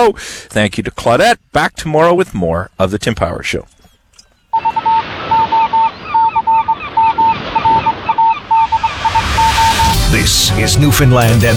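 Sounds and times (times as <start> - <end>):
speech: 0.0 - 3.8, 10.2 - 11.5
geese honking as they fly off: 4.5 - 10.0
rushing noise: 4.6 - 11.5.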